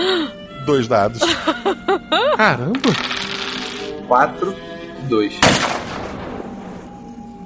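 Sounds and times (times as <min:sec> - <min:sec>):
speech: 0:00.7 - 0:03.2, 0:04.1 - 0:05.8
laughter: 0:01.2 - 0:03.0
gunshot sound effect: 0:05.4 - 0:06.8.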